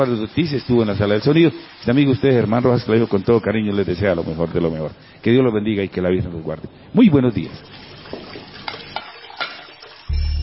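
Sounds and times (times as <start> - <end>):
water rushing while washing dishes: 0.0 - 5.1, 7.0 - 10.1
speech: 0.0 - 7.8
plates and cutlery clinking while dishes are washed: 8.1 - 10.0.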